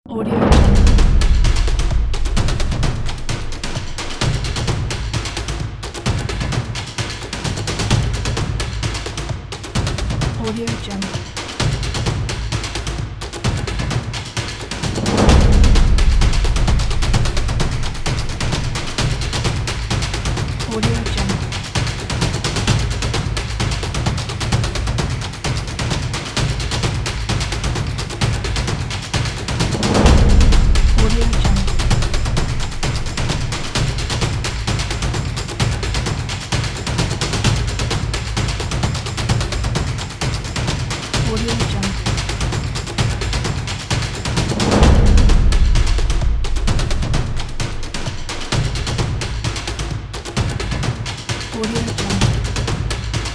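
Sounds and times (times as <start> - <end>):
percussive energetic tribal drums: 0.1 - 53.3.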